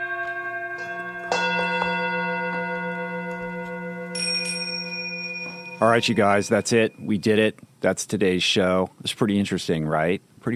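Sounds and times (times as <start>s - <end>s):
gong ringing: 0.0s - 7.1s
speech: 5.8s - 10.5s.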